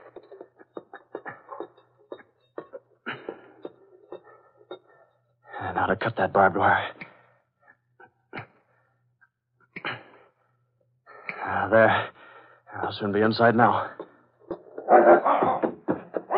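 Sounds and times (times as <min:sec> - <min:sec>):
faint clicks and scrapes: 0:00.0 - 0:05.1
speech: 0:05.7 - 0:07.0, 0:11.7 - 0:12.2, 0:12.9 - 0:14.0, 0:14.9 - 0:15.3
police dogs barking and growling: 0:14.7 - 0:15.6.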